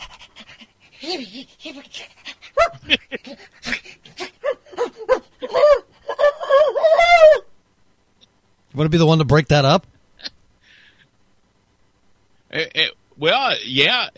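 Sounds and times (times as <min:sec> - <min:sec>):
dog panting: 0:00.0 - 0:05.4
dog whimpering: 0:00.0 - 0:07.4
speech: 0:01.1 - 0:03.8, 0:08.8 - 0:09.9, 0:13.3 - 0:14.1.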